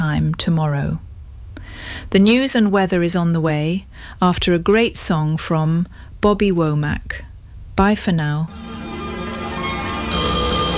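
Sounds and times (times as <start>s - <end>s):
speech: 0.2s - 1.1s, 1.7s - 8.7s
telephone ringing with an electronic trill: 8.5s - 10.7s.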